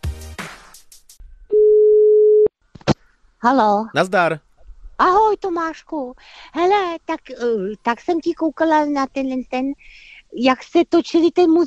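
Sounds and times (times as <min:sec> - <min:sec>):
phone ringback tone while dialing a call: 0:01.5 - 0:02.5
speech: 0:03.4 - 0:11.6.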